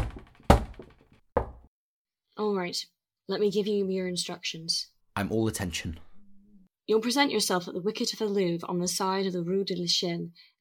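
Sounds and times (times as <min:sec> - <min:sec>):
knocks on a wooden door given as a signal: 0:00.0 - 0:01.7
speech: 0:02.4 - 0:06.1, 0:06.9 - 0:10.6.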